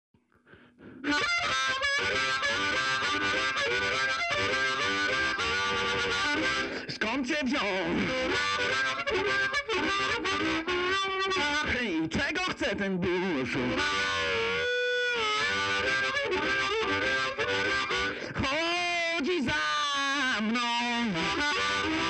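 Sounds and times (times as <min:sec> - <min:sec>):
heavy blues music with blues harp: 0:00.3 - 0:22.0.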